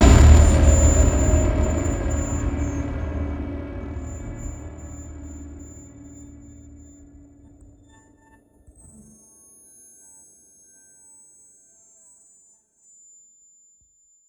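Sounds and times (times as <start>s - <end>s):
distorted squeak cinematic impact: 0.0s - 8.3s.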